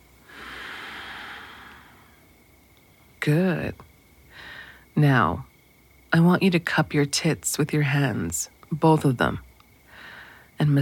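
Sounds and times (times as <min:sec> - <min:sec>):
faint hiss: 0:00.0 - 0:10.8
slow deep breath in and out during a relaxation exercise: 0:00.2 - 0:02.3, 0:04.3 - 0:04.9, 0:09.9 - 0:10.6
speech: 0:03.2 - 0:03.9, 0:05.0 - 0:05.5, 0:06.1 - 0:09.5, 0:10.6 - 0:10.8.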